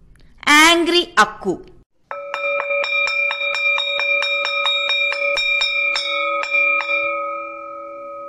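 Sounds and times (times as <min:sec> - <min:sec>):
speech: 0:00.5 - 0:01.7
school bell ringing: 0:02.1 - 0:08.2.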